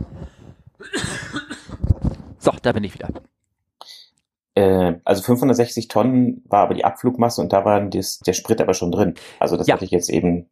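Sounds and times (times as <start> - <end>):
person clearing throat: 0.8 - 1.8
speech: 2.4 - 3.3, 4.6 - 10.5.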